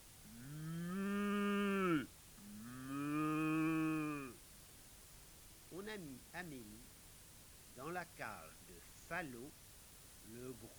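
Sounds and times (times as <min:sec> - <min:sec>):
cow mooing: 0:00.3 - 0:04.4
speech: 0:06.0 - 0:07.0, 0:07.8 - 0:09.6, 0:10.2 - 0:10.7.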